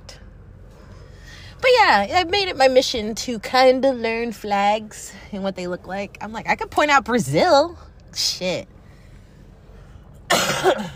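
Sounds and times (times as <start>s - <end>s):
speech: 1.9s - 8.8s
harsh raspy cough: 10.3s - 10.9s.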